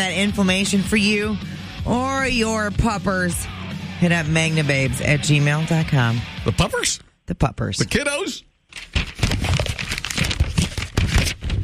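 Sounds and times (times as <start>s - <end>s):
speech: 0.0s - 8.9s
papers shuffling: 8.7s - 11.6s.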